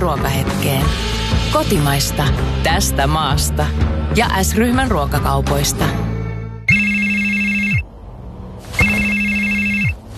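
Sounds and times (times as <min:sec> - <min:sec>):
speech: 0:00.0 - 0:06.1
telephone ringing with electronic trill: 0:06.7 - 0:07.9, 0:08.8 - 0:10.0.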